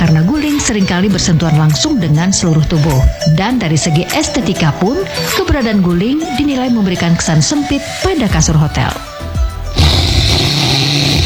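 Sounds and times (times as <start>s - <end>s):
speech: 0.6s - 9.1s
person snoring: 9.7s - 11.2s.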